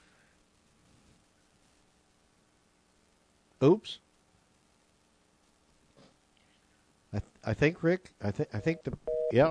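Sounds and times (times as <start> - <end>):
speech: 3.7 - 4.1, 7.1 - 9.4
steady electronic phone-line tone after a cell phone call drops: 8.6 - 9.4.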